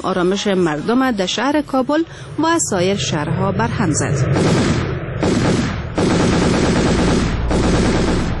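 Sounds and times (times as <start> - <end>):
speech: 0.0 - 5.4
celebratory machine gun fire outdoors: 4.3 - 8.3.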